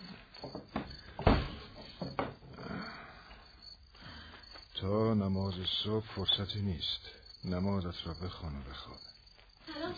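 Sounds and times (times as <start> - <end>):
wooden door being shut: 0.5 - 2.4
heavy thud of a door: 0.7 - 2.3
speech: 4.8 - 9.2.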